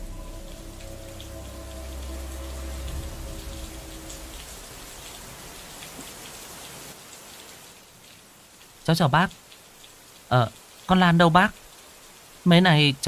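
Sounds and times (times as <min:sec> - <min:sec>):
low rumble of thunder: 0:00.0 - 0:06.2
steady rain pattering on surfaces: 0:00.0 - 0:13.0
speech: 0:08.9 - 0:09.4, 0:10.3 - 0:11.6, 0:12.4 - 0:13.0.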